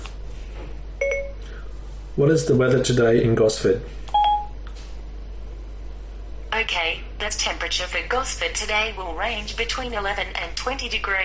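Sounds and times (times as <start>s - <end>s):
Siri activation chime from an iPhone: 1.0s - 1.4s, 4.2s - 4.6s
speech: 2.2s - 4.1s, 6.7s - 11.2s.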